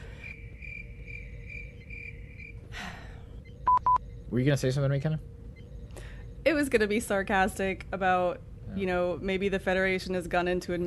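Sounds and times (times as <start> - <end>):
crickets chirping: 0.0 - 7.2
low ambient rumble: 0.0 - 10.8
speech: 4.3 - 5.3, 6.5 - 10.8.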